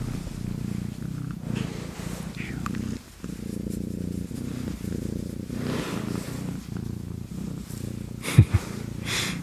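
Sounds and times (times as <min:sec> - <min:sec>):
handling noise bump: 0:00.0 - 0:01.8
Russian Blue cat purring: 0:00.0 - 0:09.4.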